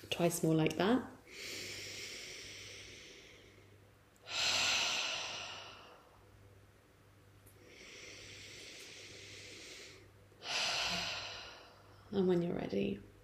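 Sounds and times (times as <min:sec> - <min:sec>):
speech: 0:00.1 - 0:01.6, 0:12.2 - 0:13.1
deep breathing in through the nose and out through the mouth: 0:01.3 - 0:06.3, 0:07.5 - 0:12.1.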